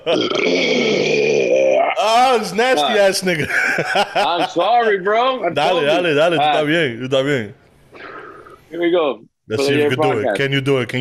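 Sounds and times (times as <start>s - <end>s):
speech: 0.0s - 1.0s, 2.0s - 7.6s, 8.7s - 10.9s
loud drawn-out burp: 0.0s - 2.2s
laughter: 3.3s - 5.0s.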